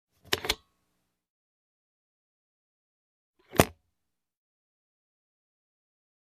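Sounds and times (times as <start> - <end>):
various suitcase locks opening and closing: 0.2 - 0.7, 3.4 - 3.8.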